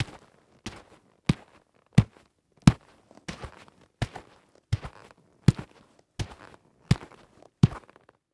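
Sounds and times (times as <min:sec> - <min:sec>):
footsteps of golf cleats walking on dirt and debris: 0:04.8 - 0:07.8.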